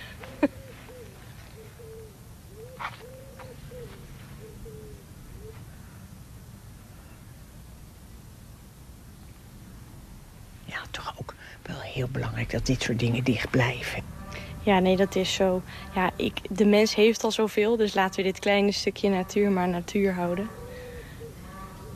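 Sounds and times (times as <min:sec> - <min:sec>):
pigeon cooing outdoors in the countryside: 0:00.0 - 0:05.6, 0:20.0 - 0:21.9
faint steady hiss of noise: 0:00.0 - 0:21.9
speech: 0:10.9 - 0:20.6.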